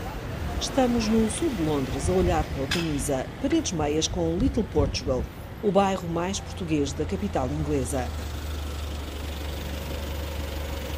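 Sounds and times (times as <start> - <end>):
cars passing slowly on a 20 mph city street in south London: 0.0 - 10.9
speech: 0.6 - 8.4.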